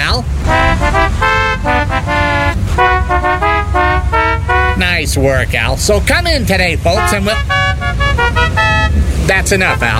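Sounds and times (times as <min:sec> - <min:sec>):
low engine rumble: 0:00.0 - 0:09.9
programmed novelty car horn playing a melodic tune: 0:00.4 - 0:05.1, 0:06.9 - 0:09.9
speech: 0:05.2 - 0:07.7, 0:09.3 - 0:09.9.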